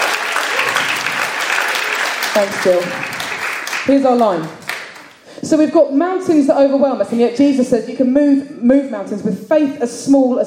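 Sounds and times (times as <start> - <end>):
audience applause: 0.0 - 5.2
speech: 2.4 - 3.1, 3.8 - 4.6, 5.4 - 10.4.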